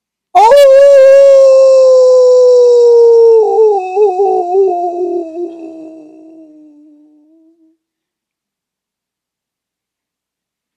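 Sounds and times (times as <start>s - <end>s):
voice imitating a wolf howling: 0.4s - 7.8s.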